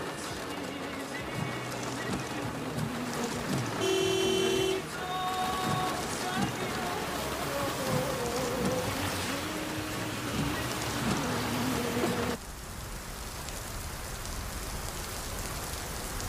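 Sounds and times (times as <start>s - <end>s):
low engine drone from a moving car: 0.0s - 15.9s
steady heavy rain: 0.0s - 16.2s.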